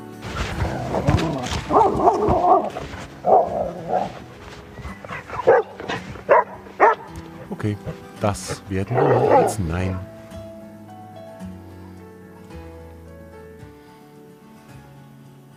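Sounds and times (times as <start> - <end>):
dog barking and yipping: 0.2 - 10.0
speech: 0.9 - 4.3, 7.6 - 10.1.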